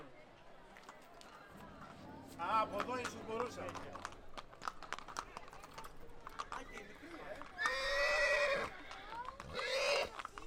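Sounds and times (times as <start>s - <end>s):
speech: 2.4s - 4.1s
horse whinnying: 7.6s - 10.2s.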